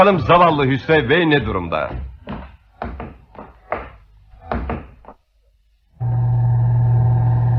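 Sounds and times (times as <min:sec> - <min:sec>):
speech: 0:00.0 - 0:02.1
steady mechanical droning hum of a lift moving up: 0:06.0 - 0:07.5.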